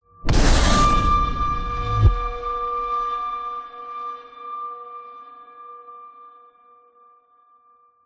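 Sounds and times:
dark aggressive resonant metallic horror impact hit: 0.2 - 3.2.

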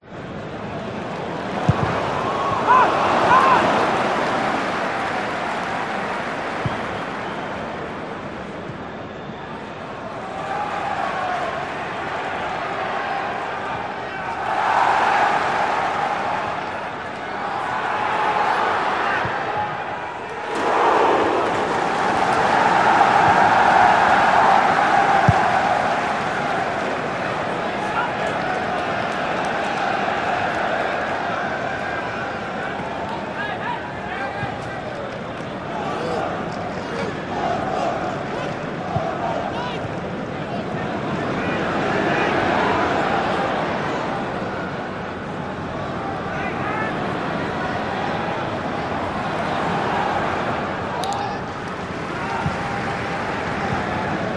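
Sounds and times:
soccer match stadium crowd chanting: 1.3 - 7.5, 10.0 - 34.7, 35.5 - 44.9, 45.8 - 54.3.

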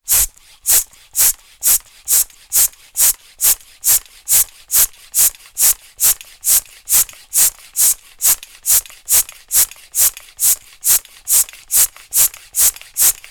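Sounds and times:
bicycle hand pump operating at medium speed at valve end: 0.0 - 13.2.

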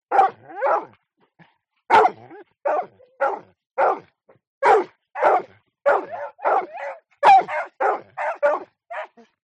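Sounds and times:
two dogs barking: 0.1 - 0.9, 1.9 - 4.0, 4.6 - 9.2.

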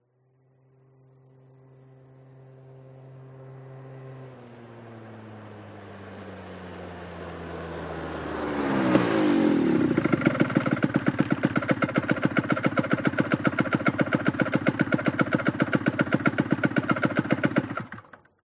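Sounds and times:
49cc scooter approaching, idling fast and shutting down: 4.3 - 18.4.

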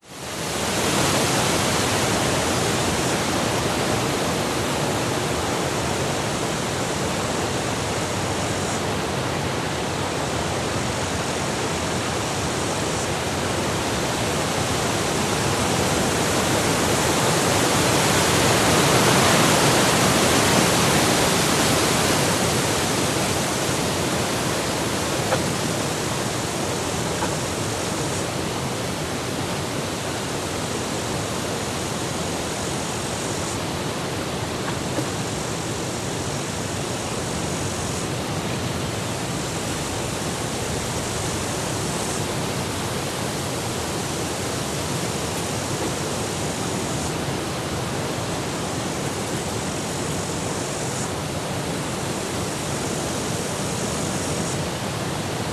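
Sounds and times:
light insects in Australian summer forest: 0.0 - 55.5
wind in forest trees in Australian summer: 0.0 - 55.5.

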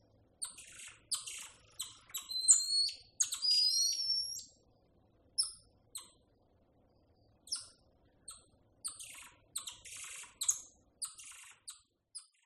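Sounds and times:
golden lion tamarin chirps, trills and long thin whistles: 0.4 - 4.6, 7.5 - 12.4.

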